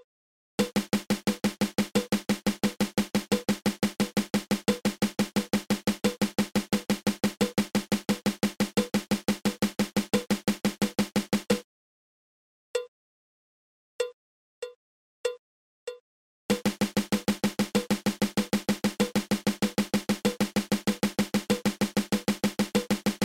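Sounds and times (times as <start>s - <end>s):
drum single stroke roll: 0.6s - 11.6s, 16.5s - 23.2s.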